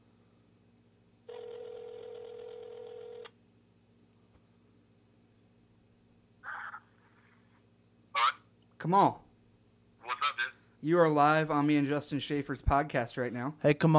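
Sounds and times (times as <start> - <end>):
low hum: 0.0 - 13.9
telephone ringback tone: 1.3 - 3.3
speech: 8.8 - 9.2, 10.8 - 13.9.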